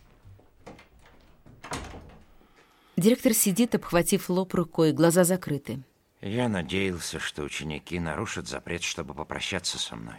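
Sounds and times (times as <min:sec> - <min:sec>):
door opening with a soft creak: 0:00.6 - 0:02.4
door handle rattle: 0:00.7 - 0:02.2
speech: 0:03.0 - 0:10.1.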